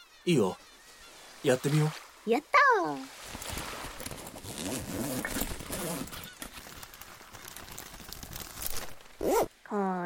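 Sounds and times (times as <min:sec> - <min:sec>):
speech: 0:00.2 - 0:00.7, 0:01.4 - 0:03.2, 0:04.6 - 0:06.3, 0:09.2 - 0:10.0
plastic wrapping crinkling as a kite is unpacked and assembled: 0:03.4 - 0:09.2.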